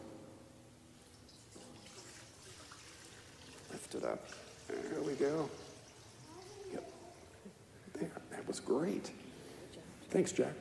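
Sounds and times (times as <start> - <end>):
water poured from a pitcher into a bowl: 1.3 - 6.5
speech: 3.9 - 5.6, 8.7 - 9.2, 10.1 - 10.6.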